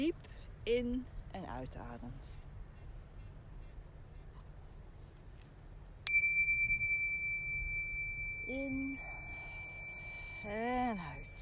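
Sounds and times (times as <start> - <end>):
speech: 0.0 - 2.4, 8.5 - 9.1, 10.4 - 11.3
single clear bell strike: 6.1 - 11.3.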